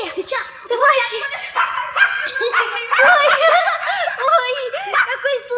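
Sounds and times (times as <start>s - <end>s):
laughter: 0.1s - 5.4s
puppy barking and yelping with high-pitched yips and whines: 1.3s - 4.0s.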